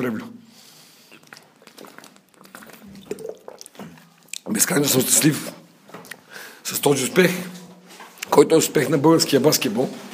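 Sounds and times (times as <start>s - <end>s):
speech: 0.0s - 0.4s, 4.6s - 5.6s, 6.8s - 7.6s, 8.4s - 10.1s
person drinking water: 0.7s - 4.5s
person gulping water: 1.1s - 4.5s.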